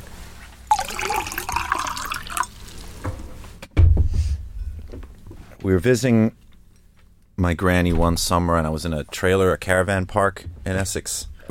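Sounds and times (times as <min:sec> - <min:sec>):
water pouring into a glass: 0:00.7 - 0:02.9
speech: 0:05.6 - 0:06.4, 0:07.4 - 0:11.4.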